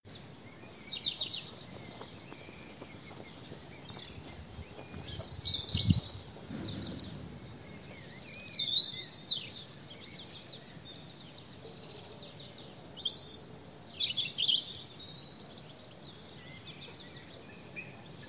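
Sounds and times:
European robin Erithacus rubecula singing tinkling phrases: 0:00.1 - 0:18.2
background hiss: 0:00.1 - 0:18.2
faint low rustling: 0:01.6 - 0:09.2.

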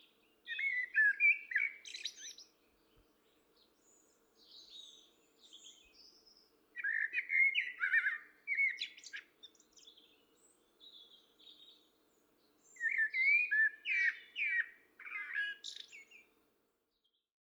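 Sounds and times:
common blackbird Turdus merula singing fluty warbles: 0:00.0 - 0:16.3.

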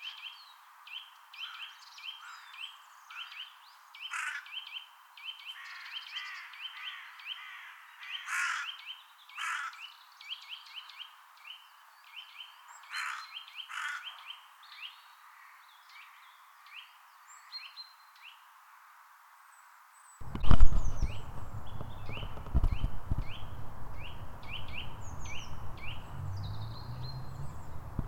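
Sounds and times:
Eurasian nuthatch Sitta europaea calling: 0:01.0 - 0:11.1, 0:12.2 - 0:14.9, 0:20.3 - 0:28.0.

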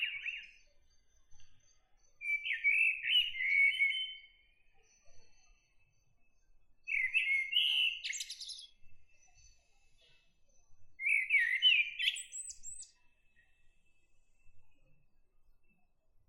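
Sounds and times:
common blackbird Turdus merula singing: 0:00.0 - 0:00.6, 0:02.2 - 0:04.5, 0:06.9 - 0:08.8, 0:11.0 - 0:13.5.

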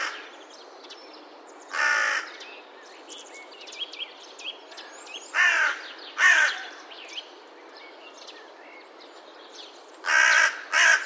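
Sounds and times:
carrion crow Corvus corone giving harsh grating caws: 0:01.7 - 0:02.3, 0:05.4 - 0:06.8, 0:10.0 - 0:11.0.

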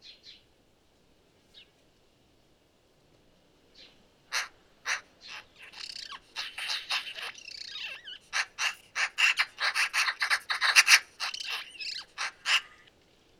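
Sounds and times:
Eurasian magpie Pica pica chattering: 0:04.3 - 0:12.9.

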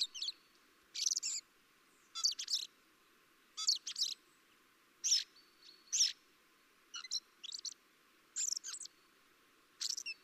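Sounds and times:
common blackbird Turdus merula chirping: 0:00.0 - 0:01.4, 0:02.0 - 0:02.7, 0:03.6 - 0:04.2, 0:05.0 - 0:06.2, 0:06.9 - 0:07.8, 0:08.4 - 0:09.1, 0:09.8 - 0:10.2.

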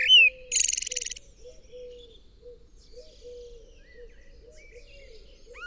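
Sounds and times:
common blackbird Turdus merula harsh buzzy chatter and sharp chirps: 0:00.0 - 0:01.2.

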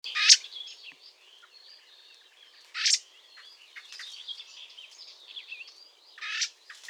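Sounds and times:
Eurasian blackbird Turdus merula harsh call bursts: 0:00.1 - 0:00.8, 0:02.8 - 0:03.1, 0:06.2 - 0:06.6.

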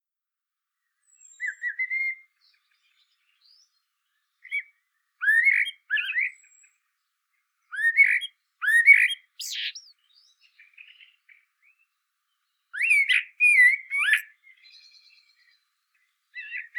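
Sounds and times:
common blackbird Turdus merula song: 0:00.8 - 0:16.7.

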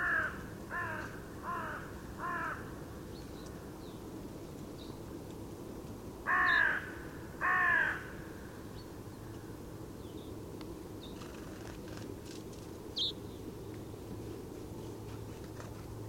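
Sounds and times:
Carrion crow cawing, Corvus corone: 0:00.0 - 0:02.7, 0:06.3 - 0:08.2.

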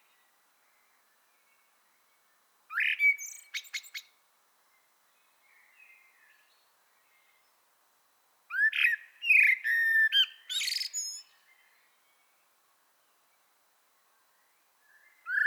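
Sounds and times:
Common blackbird Turdus merula singing mellow whistled phrases: 0:02.7 - 0:04.1, 0:08.5 - 0:11.8, 0:14.9 - 0:15.4.

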